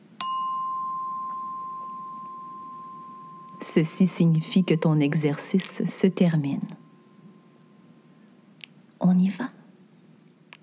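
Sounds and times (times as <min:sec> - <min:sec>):
small bell ringing: 0:00.0 - 0:07.7
quiet hum: 0:00.0 - 0:10.6
speech: 0:03.6 - 0:06.8, 0:09.1 - 0:09.6.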